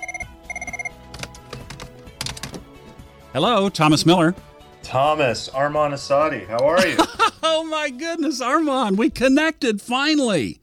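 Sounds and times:
telephone bell ringing: 0.0 - 1.0
handset being picked up with clunks and clatters: 0.6 - 3.0
speech: 3.4 - 10.6
laughter: 6.7 - 7.8.

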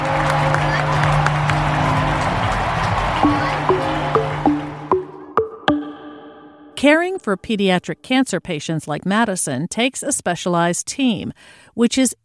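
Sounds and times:
large ballpark crowd roaring and cheering: 0.0 - 5.9
big bell ringing with resonant strikes after home run: 0.0 - 6.9
speech: 6.8 - 12.2.

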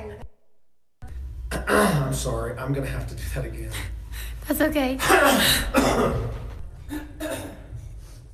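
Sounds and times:
person clearing throat: 1.5 - 2.2, 5.0 - 7.7
speech: 1.8 - 7.1.

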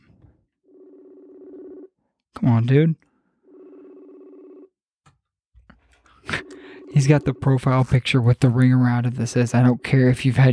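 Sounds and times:
electronic phone ringback tone: 0.6 - 1.9, 3.4 - 4.7, 6.3 - 7.9
speech: 2.4 - 3.1, 7.0 - 10.5.

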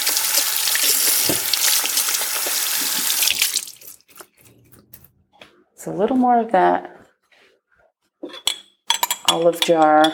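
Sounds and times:
water running from a kitchen tap while hands are rinsed: 0.0 - 4.2
speech: 5.8 - 6.9, 9.3 - 10.1.

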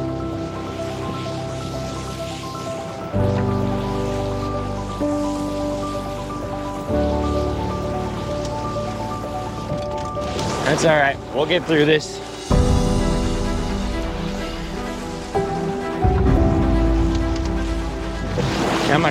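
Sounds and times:
steady rushing river water: 0.0 - 19.0
boat scraping and bumping over rocks in a river current: 8.0 - 19.0
speech: 10.7 - 12.3.

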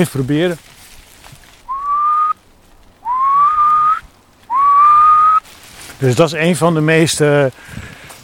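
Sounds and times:
speech: 0.0 - 0.8, 6.0 - 8.0
person whistling an imitation of a male animal's territorial call: 1.7 - 2.4, 3.0 - 5.4.

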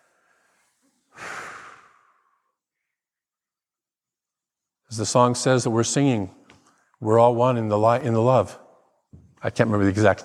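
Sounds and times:
deep breath: 0.0 - 3.1
speech: 4.9 - 6.4, 7.0 - 8.6, 9.4 - 10.2.

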